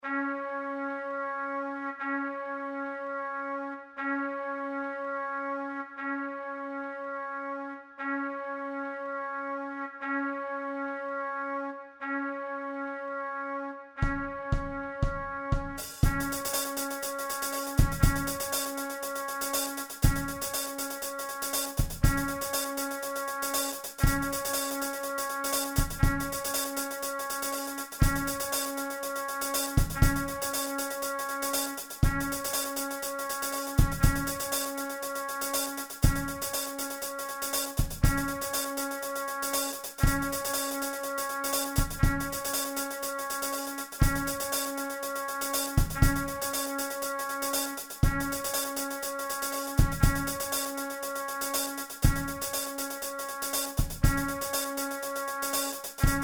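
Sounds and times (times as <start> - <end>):
trumpet: 0.0 - 56.2
drum kit: 14.0 - 56.2.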